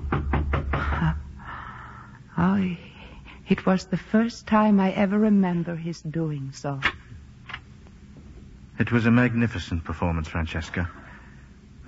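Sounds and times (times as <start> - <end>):
firm knocks on a door: 0.0 - 1.1
speech: 2.4 - 2.9, 3.5 - 7.0, 8.8 - 11.0.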